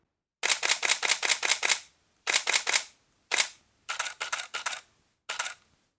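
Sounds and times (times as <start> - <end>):
camera shutter firing in silent and standard modes: 0.4 - 5.6.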